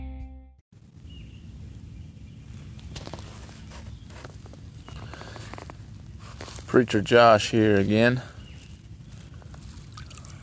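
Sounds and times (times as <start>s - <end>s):
speech: 6.8s - 8.3s
water dripping and trickling: 9.6s - 10.4s.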